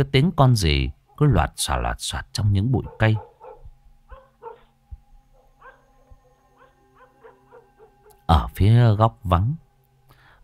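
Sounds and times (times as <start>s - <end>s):
speech: 0.0s - 3.3s, 8.3s - 9.6s
low steady hum: 0.0s - 10.4s
dogs barking at night: 2.7s - 4.8s, 5.4s - 8.2s.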